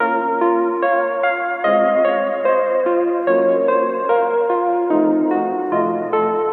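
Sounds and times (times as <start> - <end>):
nostalgic melody loop in A sharp minor: 0.0 - 6.5.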